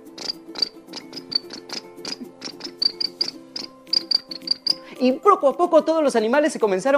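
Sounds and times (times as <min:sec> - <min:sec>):
crickets chirping: 0:00.1 - 0:04.8
speech: 0:05.0 - 0:06.9.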